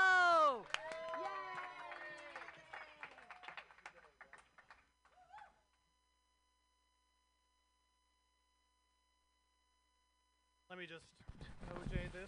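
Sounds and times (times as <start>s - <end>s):
audience cheering voices: 0.0s - 3.6s
audience clapping: 0.0s - 5.6s
speech: 10.8s - 12.2s.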